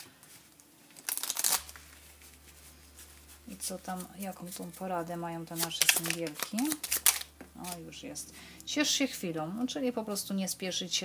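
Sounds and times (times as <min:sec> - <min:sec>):
deck of oracle cards being shuffled for a card reading: 0:00.0 - 0:04.8, 0:05.5 - 0:07.9
speech: 0:03.6 - 0:07.0, 0:07.6 - 0:11.0.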